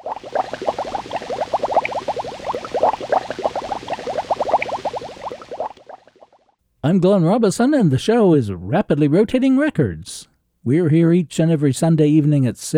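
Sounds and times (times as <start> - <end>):
water bubbling rapidly: 0.0 - 6.6
speech: 6.8 - 12.7.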